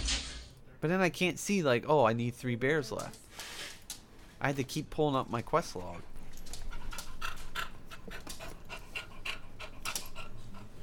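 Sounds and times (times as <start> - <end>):
speech: 0.8 - 3.2, 4.4 - 6.1
dog panting: 6.5 - 10.8.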